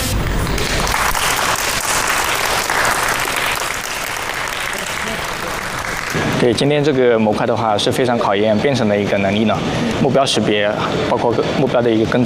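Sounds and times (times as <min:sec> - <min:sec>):
crowd cheering and applauding: 0:00.1 - 0:06.5
speech: 0:06.4 - 0:12.2.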